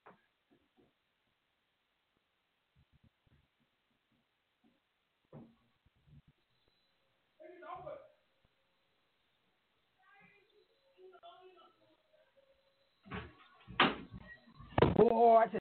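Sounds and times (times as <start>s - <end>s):
thumps and bangs on a door: 5.3s - 5.7s
speech: 15.0s - 15.5s.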